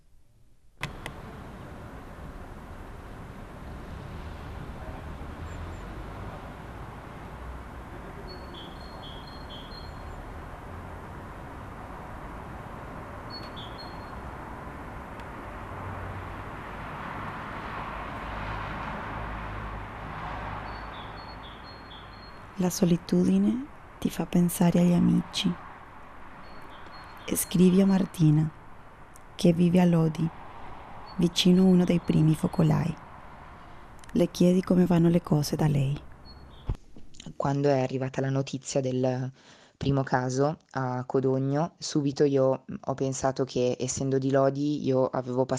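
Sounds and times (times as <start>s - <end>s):
low rumble of distant city traffic: 0.6s - 39.1s
bird chirping in short high bursts: 8.0s - 10.6s, 13.0s - 14.5s, 20.6s - 30.3s, 31.0s - 33.0s, 33.6s - 37.2s
speech: 22.6s - 25.6s, 27.3s - 28.6s, 29.4s - 30.4s, 31.2s - 33.0s, 34.1s - 36.1s, 37.4s - 45.5s.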